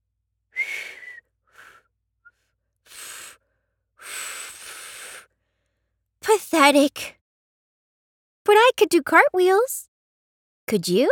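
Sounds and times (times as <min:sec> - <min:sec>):
breathy puffs of air from a failed attempt to whistle: 0:02.9 - 0:05.6
speech: 0:06.5 - 0:07.2, 0:08.5 - 0:09.9, 0:10.7 - 0:11.1.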